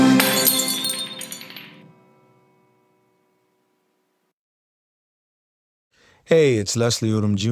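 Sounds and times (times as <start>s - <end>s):
glasses clinking together in a toast: 0.2s - 1.9s
speech: 6.3s - 7.5s.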